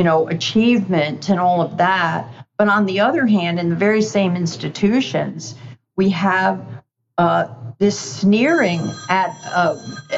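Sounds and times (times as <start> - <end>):
speech: 0.0 - 10.1
telephone ringing with a high electronic trill: 8.4 - 10.1.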